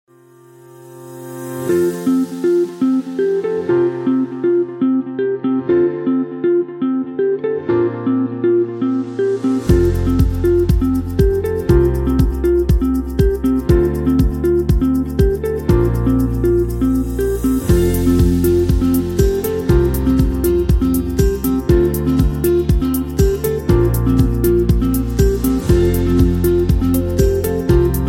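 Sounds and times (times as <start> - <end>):
corporate background music: 1.0 - 28.0.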